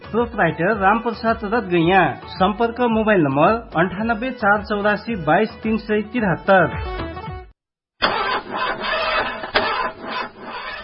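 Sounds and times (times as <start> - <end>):
speech: 0.1 - 7.0
car engine cranking and failing to start from a battery problem: 8.0 - 10.8.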